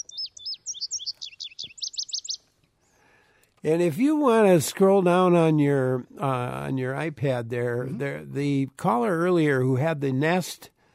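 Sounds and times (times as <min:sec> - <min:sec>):
Indigo Bunting singing: 0:00.0 - 0:02.6
speech: 0:03.6 - 0:10.7.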